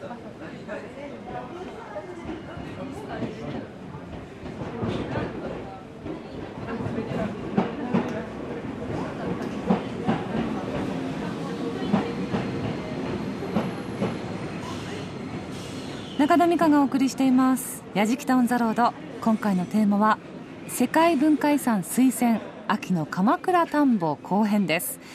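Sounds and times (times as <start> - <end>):
train rumbling into a station: 2.2 - 22.2
speech: 16.3 - 25.1.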